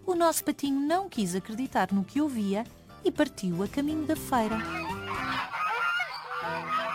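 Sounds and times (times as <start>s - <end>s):
speech: 0.2s - 5.0s
old geese honking: 4.2s - 6.9s.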